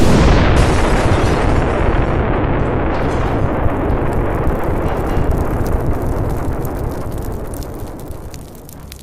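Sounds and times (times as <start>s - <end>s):
burning debris rumbling: 0.0s - 9.0s
explosion of oxygen and propane tanks in a burning basement: 0.0s - 9.0s.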